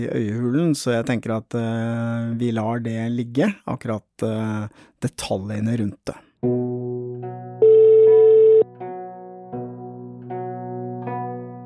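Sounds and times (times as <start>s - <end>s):
speech: 0.0s - 6.7s
bright telephone beep: 7.6s - 8.6s
telephone ringback hum on a call to the police: 7.6s - 8.6s.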